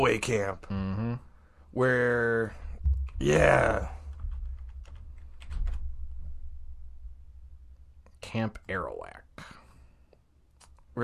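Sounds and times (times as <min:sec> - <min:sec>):
speech: 0:00.0 - 0:04.0, 0:08.2 - 0:09.6
low hum: 0:02.4 - 0:08.7
computer keyboard clicks: 0:04.0 - 0:05.8.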